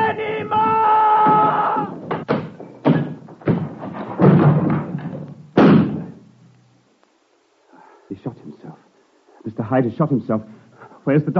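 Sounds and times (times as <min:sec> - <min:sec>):
door being smashed in with heavy thuds and crashes: 0:00.6 - 0:06.2
speech: 0:09.7 - 0:11.3.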